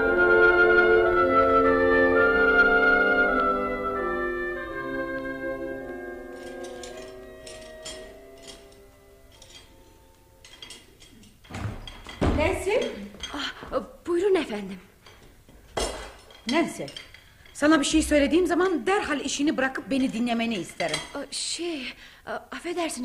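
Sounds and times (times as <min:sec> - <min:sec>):
sustained musical tones: 0:00.0 - 0:11.1
dishes and cutlery clattering as someone washes up in a kitchen: 0:05.8 - 0:13.7, 0:14.4 - 0:21.4
speech: 0:17.6 - 0:23.0.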